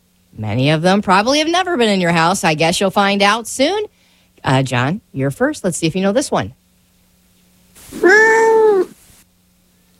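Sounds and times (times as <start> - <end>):
speech: 0.4 - 6.6
cat meowing: 7.9 - 9.0.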